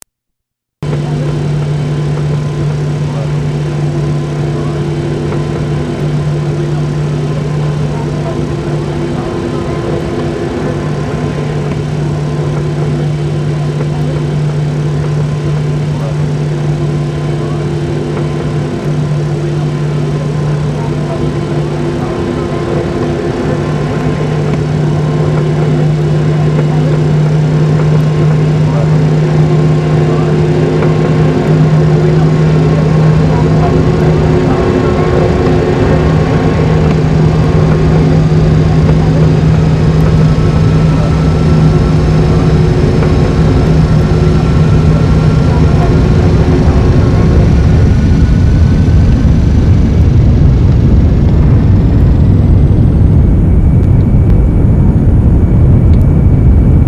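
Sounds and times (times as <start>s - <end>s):
CFM56-7B jet engine heard from aircraft interior: 0.8s - 56.8s.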